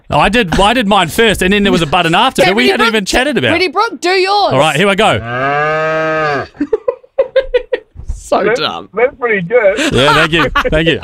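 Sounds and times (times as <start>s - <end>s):
speech: 0.1s - 6.8s, 8.3s - 11.0s
person imitating a cow mooing: 5.2s - 6.6s
laughter: 6.4s - 8.0s, 9.8s - 11.0s.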